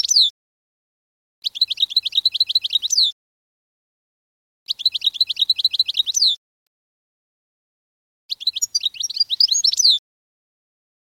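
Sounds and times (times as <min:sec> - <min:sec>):
canary trilling song: 0:00.0 - 0:00.4, 0:01.4 - 0:03.2, 0:04.7 - 0:06.4, 0:08.3 - 0:10.0.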